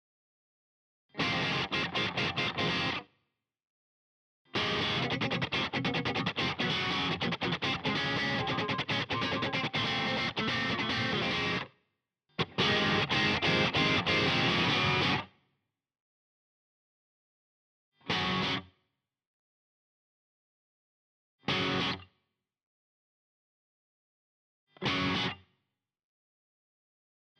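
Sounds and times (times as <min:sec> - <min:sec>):
electric guitar backing track stem: 0:01.2 - 0:03.0, 0:04.6 - 0:11.7, 0:12.4 - 0:15.3, 0:18.1 - 0:18.6, 0:21.5 - 0:22.0, 0:24.8 - 0:25.4.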